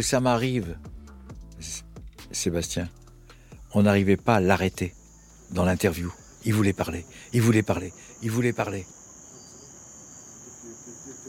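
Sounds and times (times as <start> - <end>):
speech: 0.0 - 0.9, 1.6 - 3.0, 3.7 - 9.0
crickets chirping at dusk: 0.0 - 11.2.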